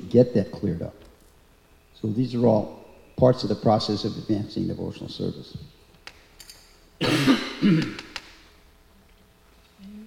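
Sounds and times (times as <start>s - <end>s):
speech: 0.1s - 1.0s, 2.0s - 5.8s, 7.0s - 8.0s
rough harsh rasping throat clearing: 7.0s - 8.2s.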